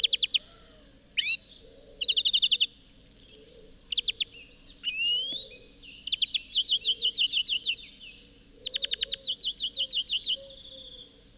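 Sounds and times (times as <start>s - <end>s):
European greenfinch Chloris chloris whistling and chattering trills: 1.2s - 11.3s.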